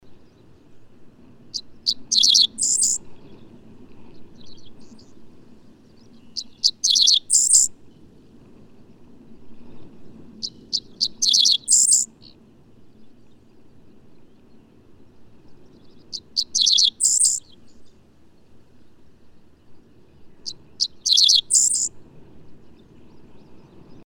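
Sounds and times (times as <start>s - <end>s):
bird singing: 1.6s - 3.0s, 5.9s - 7.7s, 10.4s - 12.4s, 15.6s - 18.0s, 20.4s - 21.9s.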